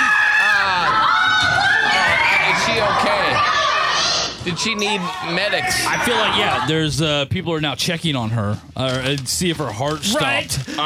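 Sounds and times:
crowd screaming: 0:00.0 - 0:06.8
speech: 0:04.5 - 0:10.8.

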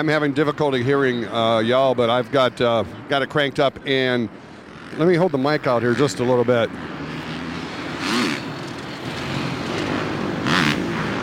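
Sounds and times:
speech: 0:00.0 - 0:07.0
moped or motorcycle engine passing: 0:03.9 - 0:11.2.

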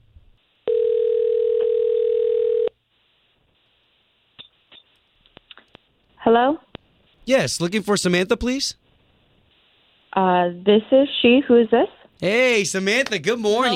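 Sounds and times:
steady telephone line tone: 0:00.7 - 0:02.8
speech: 0:07.3 - 0:08.8, 0:10.2 - 0:13.7.

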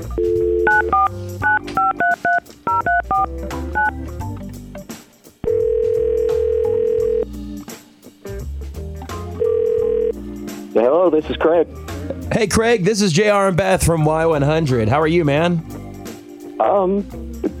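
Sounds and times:
telephone ringback tone on the line: 0:00.2 - 0:03.9, 0:05.4 - 0:07.3, 0:09.4 - 0:10.2
touch-tone dialing beeps as a phone call is placed: 0:00.2 - 0:04.0
speech: 0:11.1 - 0:15.7, 0:16.7 - 0:17.2.

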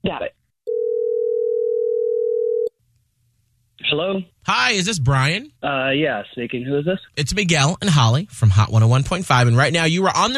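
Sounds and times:
telephone dial tone of an outgoing call: 0:00.7 - 0:02.7
speech: 0:04.0 - 0:10.3.

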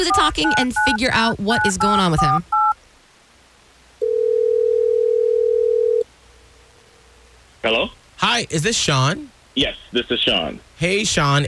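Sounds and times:
telephone ringback tone: 0:00.0 - 0:02.8, 0:04.0 - 0:06.0
speech: 0:00.1 - 0:02.6, 0:07.6 - 0:11.4.

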